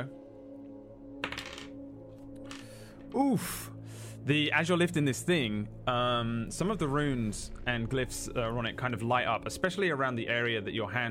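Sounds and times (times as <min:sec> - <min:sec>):
physical dice clattering across a hard tabletop: 0:01.2 - 0:01.8, 0:02.4 - 0:02.6
steady low hum: 0:01.9 - 0:10.2
speech: 0:03.1 - 0:11.1.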